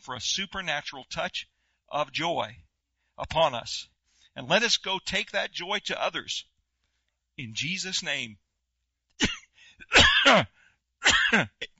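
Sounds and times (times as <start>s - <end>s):
speech: 0.0s - 6.5s, 7.4s - 8.4s, 9.2s - 11.7s
person coughing harshly: 9.2s - 11.7s.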